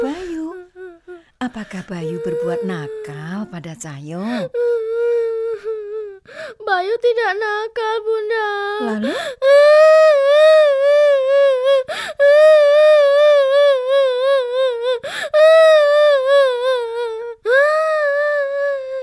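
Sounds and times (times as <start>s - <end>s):
child crying loudly in wavering wails: 0.0s - 1.2s, 1.9s - 19.0s
speech: 1.4s - 4.8s, 6.7s - 9.6s
child gasping for breath between sobs: 6.3s - 6.6s, 8.8s - 9.4s.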